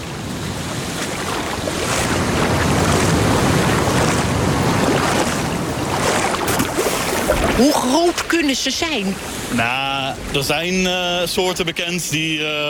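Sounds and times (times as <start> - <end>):
gusts of wind buffeting the microphone: 0.0 - 9.5
surf and sea waves washing in: 0.0 - 12.2
speech: 7.6 - 12.6.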